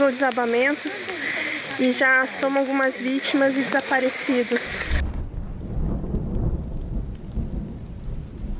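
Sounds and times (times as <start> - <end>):
heavy rain pouring at Morro do Macaco Molhado in Guarujá: 0.0 - 8.5
speech: 0.1 - 5.0
deep rolling rumble of thunder: 4.9 - 8.5.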